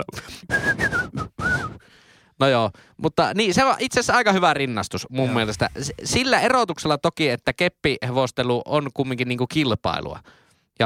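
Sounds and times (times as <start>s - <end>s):
speech: 0.0s - 0.8s, 2.4s - 10.8s
person whistling a medieval-sounding tune: 0.5s - 1.8s.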